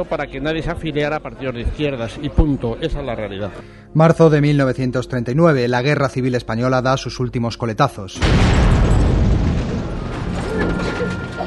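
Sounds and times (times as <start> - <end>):
speech: 0.0 - 9.0
bombs exploding in wartime with continuous low rumble: 8.2 - 11.4.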